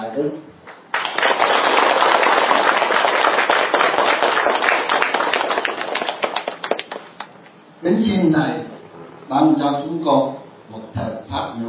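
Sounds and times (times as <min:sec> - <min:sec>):
speech: 0:00.2 - 0:00.5, 0:07.8 - 0:08.7, 0:09.3 - 0:11.6
Buddhist lay audience applause: 0:00.9 - 0:07.3.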